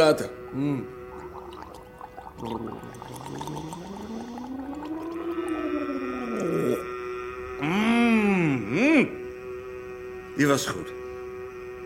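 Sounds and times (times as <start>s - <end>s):
speech: 0.0s - 1.0s, 2.4s - 4.3s, 7.6s - 9.2s, 10.4s - 11.0s
person gargling water: 0.0s - 8.2s.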